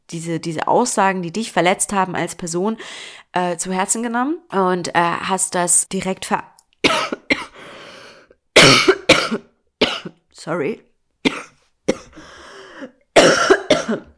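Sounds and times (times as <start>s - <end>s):
speech: 0.1s - 6.5s, 10.4s - 10.9s, 13.9s - 14.1s
harsh coughing fit: 6.9s - 7.6s, 8.6s - 10.2s, 11.3s - 14.1s.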